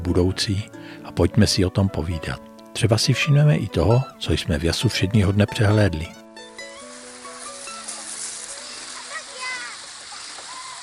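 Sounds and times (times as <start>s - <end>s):
speech: 0.1s - 6.2s
flowing water splashing at a children's water playground: 6.5s - 10.8s.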